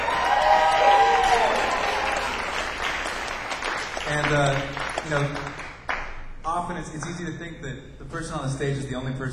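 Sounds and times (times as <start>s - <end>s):
crowd at a live music show cheering: 0.0s - 5.2s
crowd at a live music show clapping: 0.0s - 7.2s
speech: 4.1s - 5.6s, 6.6s - 9.3s.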